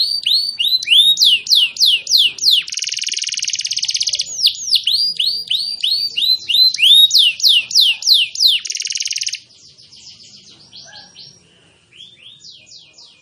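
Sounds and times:
canary singing: 0.0s - 13.2s.

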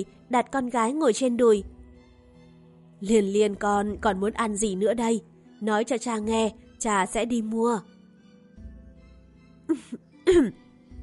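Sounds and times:
speech: 0.0s - 1.8s, 3.0s - 7.9s, 9.7s - 10.6s
soft cough voiced by a narrator imitating the sound: 9.7s - 10.6s
breathy voiced throat-clearing hem: 9.7s - 10.7s.

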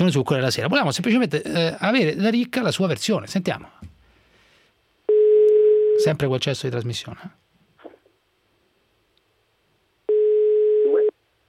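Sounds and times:
speech: 0.0s - 3.9s, 6.0s - 7.4s
telephone ringing tone when calling a mobile phone: 5.1s - 6.0s, 10.1s - 11.1s.

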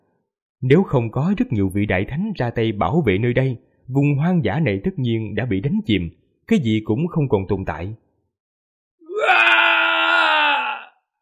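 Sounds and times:
speech: 0.6s - 8.0s
loud sustained scream of unwilling defiance: 9.0s - 11.1s.

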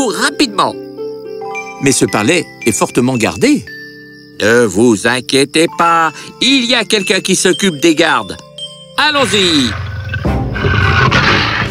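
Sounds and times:
speech: 0.0s - 0.8s, 1.8s - 3.8s, 4.4s - 9.9s
lion roaring: 9.7s - 11.6s.

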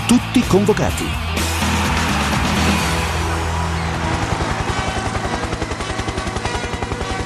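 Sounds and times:
speech: 0.1s - 1.3s
helicopter rotor noise: 2.1s - 7.2s.

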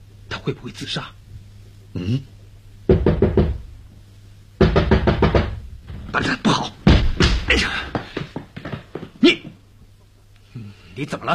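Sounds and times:
speech: 0.4s - 1.2s, 2.0s - 2.3s
knocking on a door: 2.9s - 3.7s, 4.6s - 6.0s, 6.9s - 9.2s.

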